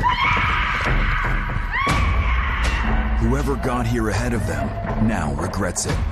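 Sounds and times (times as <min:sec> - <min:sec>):
children on a path to a cave screaming in terror: 0:00.0 - 0:03.8
speech: 0:03.3 - 0:06.0.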